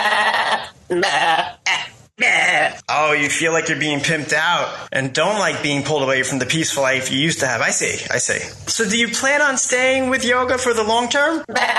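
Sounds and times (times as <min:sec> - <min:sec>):
farm goat bleating: 0:00.0 - 0:01.9, 0:11.5 - 0:11.7
speech: 0:00.1 - 0:01.8, 0:02.9 - 0:11.7.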